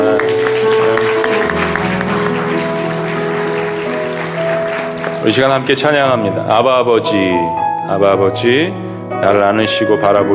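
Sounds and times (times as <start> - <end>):
large audience applauding: 0.0 - 6.0
speech: 5.2 - 10.3.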